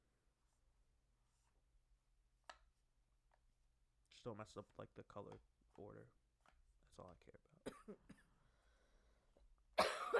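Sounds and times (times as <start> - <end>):
speech: 4.2 - 6.2, 7.0 - 8.2
person coughing harshly: 7.6 - 8.4, 9.8 - 10.1.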